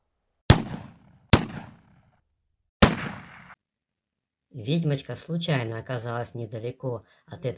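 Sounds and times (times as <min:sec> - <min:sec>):
hunting rifle gunshots with decay: 0:00.5 - 0:01.9, 0:02.8 - 0:03.6
speech: 0:04.6 - 0:07.5.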